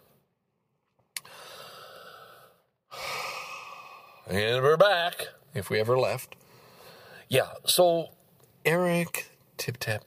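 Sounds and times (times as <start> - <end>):
breath taken close to a microphone: 1.2 - 4.3, 6.4 - 7.3
speech: 4.3 - 6.4, 7.3 - 10.0.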